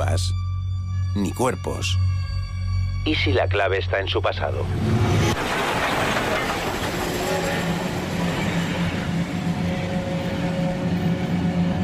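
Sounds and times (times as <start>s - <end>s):
speech: 0.2s - 0.4s, 1.2s - 2.2s, 3.0s - 5.6s
train rumbling on tracks near a village station: 4.6s - 11.8s.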